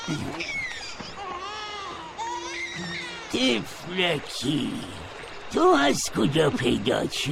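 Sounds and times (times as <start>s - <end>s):
small baby crying with high wavering wails: 0.0s - 3.8s
speech: 0.1s - 0.6s, 3.3s - 7.3s.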